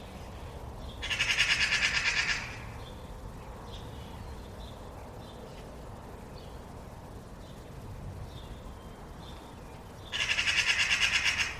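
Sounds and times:
faint low background hum: 0.0 - 11.5
bird giving a harsh rasping call of rapid pulses: 1.0 - 2.7, 10.1 - 11.5.

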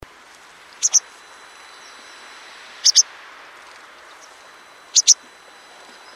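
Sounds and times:
steady low hiss: 0.0 - 6.1
bird giving very high sharp double chirps: 0.8 - 3.1, 4.2 - 6.1.

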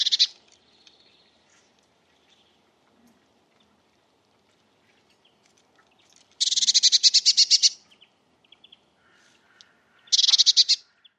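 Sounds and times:
Eurasian blue tit rattling churr: 0.0 - 0.4, 6.4 - 7.8, 10.0 - 10.9
Eurasian blue tit thin calls: 0.0 - 2.6, 4.8 - 11.1.

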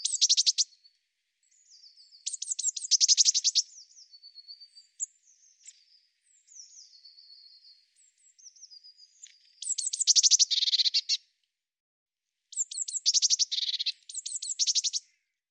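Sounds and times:
Eurasian blue tit calling with scolding churrs: 0.0 - 0.7, 2.0 - 5.8, 8.4 - 11.2, 12.5 - 15.2.

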